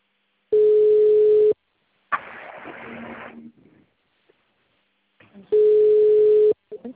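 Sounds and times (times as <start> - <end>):
phone call ringing tone on a group call: 0.5 - 1.6, 5.5 - 6.6.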